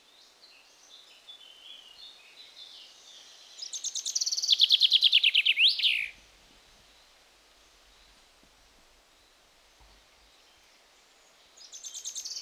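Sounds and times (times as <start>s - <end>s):
common chaffinch Fringilla coelebs singing: 3.6s - 6.2s, 11.6s - 12.3s.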